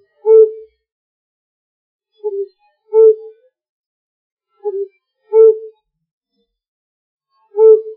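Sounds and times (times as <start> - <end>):
flammulated owl: 0.0 - 0.7, 2.2 - 3.3, 4.7 - 5.7, 7.5 - 7.9.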